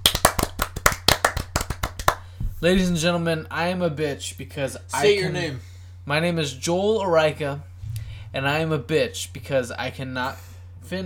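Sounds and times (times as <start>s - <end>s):
small group clapping: 0.0s - 2.3s
speech: 2.6s - 7.7s, 8.3s - 11.0s.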